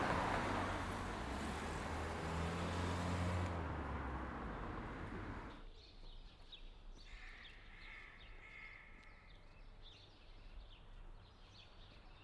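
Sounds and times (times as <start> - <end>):
cars passing on a busy street: 0.0 - 5.6.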